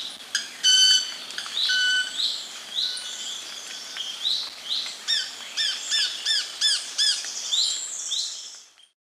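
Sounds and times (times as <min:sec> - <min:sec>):
other birds repeating rising slurred whistles in Ecuador: 0:00.4 - 0:08.6
Club-winged Manakin ringing sustained tone in Ecuador: 0:00.6 - 0:02.2, 0:02.8 - 0:03.3.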